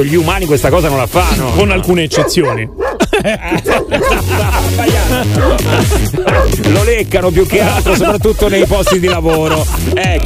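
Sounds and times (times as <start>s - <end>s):
speech: 0.0s - 10.2s
laughter: 0.8s - 10.2s
dog barking and yipping: 2.1s - 6.6s.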